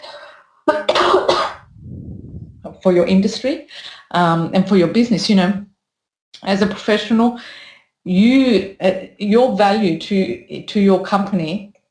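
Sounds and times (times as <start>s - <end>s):
speech: 0.7s - 1.3s, 2.8s - 5.7s, 6.4s - 11.7s
person coughing to clear their chest: 0.9s - 1.7s.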